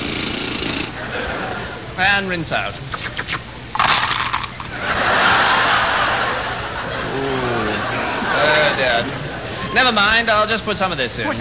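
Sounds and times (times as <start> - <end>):
dentist's drill whirring: 0.0 - 1.0
laughter: 1.0 - 1.9, 4.6 - 10.0
speech: 2.0 - 3.4, 8.8 - 11.3.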